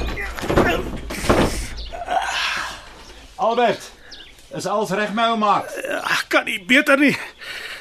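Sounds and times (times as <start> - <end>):
heavy booming thuds on the door of an old house: 0.0 - 1.9
strained grunting voices: 0.0 - 3.0
speech: 3.5 - 7.3.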